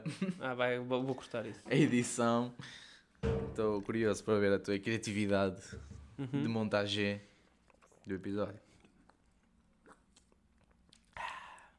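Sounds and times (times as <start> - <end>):
speech: 0.0 - 7.3, 8.0 - 8.7
chewing and swallowing: 7.4 - 11.7
soft wet mouth clicks: 8.8 - 11.7.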